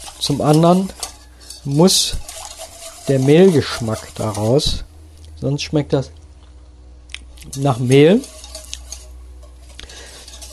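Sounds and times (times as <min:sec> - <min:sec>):
utensil stirring a boiling flour-thickened mixture in a pot: 0:00.0 - 0:04.9, 0:07.4 - 0:10.5
constant low hum: 0:00.0 - 0:10.5
speech: 0:00.2 - 0:01.0, 0:01.6 - 0:02.3, 0:03.1 - 0:06.2, 0:07.4 - 0:08.4.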